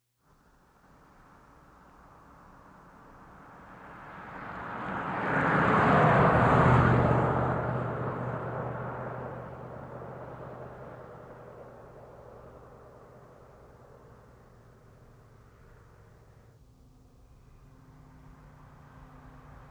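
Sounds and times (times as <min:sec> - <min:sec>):
cars passing on a highway: 0:02.9 - 0:19.6.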